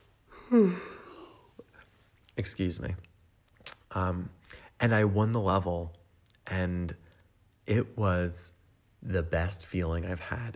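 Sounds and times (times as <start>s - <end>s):
person yawning: 0.3s - 1.5s
speech: 0.5s - 0.9s, 2.4s - 3.1s, 3.9s - 7.0s, 7.7s - 10.5s.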